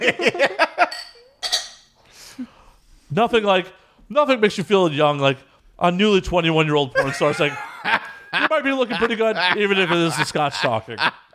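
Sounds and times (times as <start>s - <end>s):
speech: 0.0s - 0.5s, 3.2s - 7.6s, 8.4s - 11.2s
laughter: 0.0s - 0.9s, 7.0s - 11.3s
glasses clinking in a toast: 0.8s - 1.9s.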